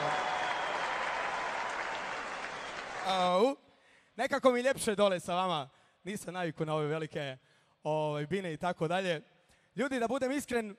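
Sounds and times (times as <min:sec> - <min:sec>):
audience applause for an orchestra at a tavern performance: 0:00.0 - 0:03.2
speech: 0:03.1 - 0:03.6, 0:04.2 - 0:10.7.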